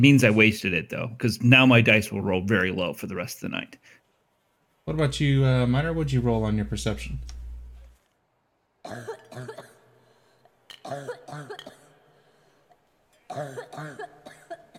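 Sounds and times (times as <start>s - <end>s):
speech: 0.0s - 4.0s, 4.8s - 7.4s, 8.9s - 9.7s, 10.9s - 11.8s, 13.3s - 14.3s
woman coughing: 8.8s - 9.9s, 10.7s - 12.0s, 13.3s - 14.7s.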